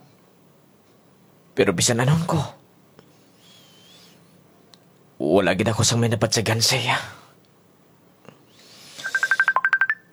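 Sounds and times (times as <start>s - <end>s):
faint hum: 0.0s - 10.1s
speech: 1.6s - 2.6s, 5.6s - 7.2s
mobile phone ringtone beeps for an incoming call: 9.0s - 10.1s.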